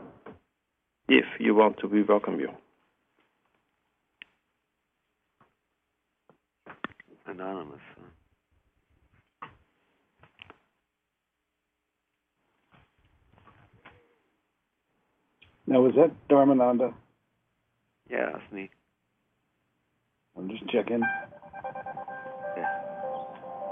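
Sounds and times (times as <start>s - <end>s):
speech: 1.1s - 2.6s, 15.8s - 17.0s, 18.1s - 18.8s, 20.4s - 21.8s
phone electronic reminder tone with tinkling chime-like melody: 21.0s - 23.2s.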